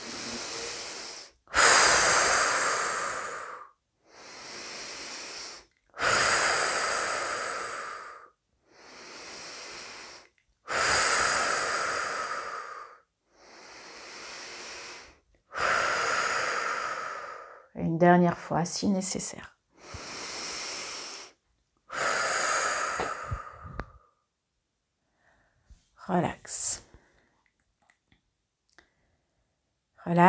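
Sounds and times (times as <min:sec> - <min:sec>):
slow deep breathing during a guided meditation: 0:00.0 - 0:17.7, 0:19.8 - 0:24.2
speech: 0:17.8 - 0:19.5, 0:26.1 - 0:26.4.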